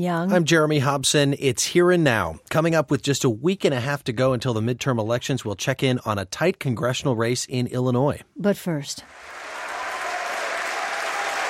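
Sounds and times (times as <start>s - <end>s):
speech: 0.0s - 9.4s
sustained applause from members of parliament: 9.0s - 11.4s.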